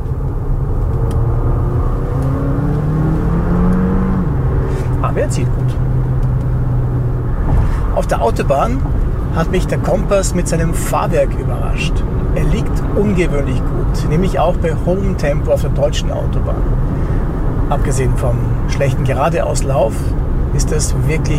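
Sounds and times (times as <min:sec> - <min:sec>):
plug-in hybrid SUV engine revving under load: 0:00.1 - 0:21.3
speech: 0:08.2 - 0:17.1, 0:17.7 - 0:21.3.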